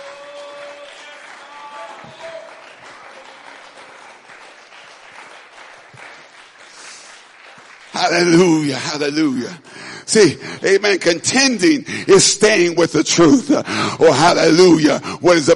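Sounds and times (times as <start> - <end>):
audience clapping hands: 0.0 - 11.7
speech: 8.0 - 15.5.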